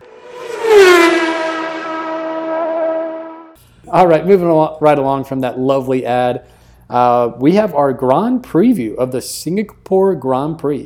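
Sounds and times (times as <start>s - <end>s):
loud car engine roaring past: 0.0s - 3.6s
speech: 3.9s - 10.8s.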